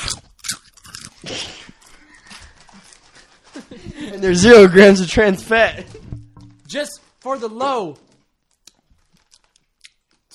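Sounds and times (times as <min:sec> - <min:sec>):
crispy chips being bitten and chewed: 0:00.0 - 0:03.7, 0:06.7 - 0:10.3
speech: 0:04.0 - 0:06.0, 0:06.7 - 0:08.0.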